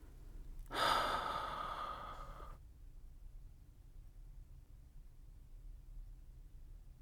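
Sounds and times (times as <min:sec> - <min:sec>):
deep breath inhaling through nose and exhaling through mouth: 0:00.7 - 0:02.6.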